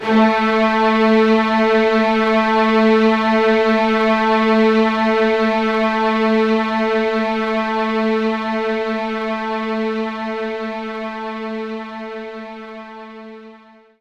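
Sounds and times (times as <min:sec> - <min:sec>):
string loop in A2: 0:00.0 - 0:13.6.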